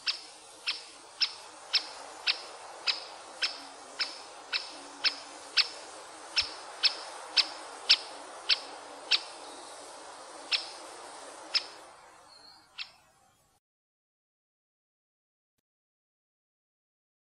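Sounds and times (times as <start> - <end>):
great spotted woodpecker giving kik calls: 0.0 - 13.0
faint background hiss: 0.0 - 13.6.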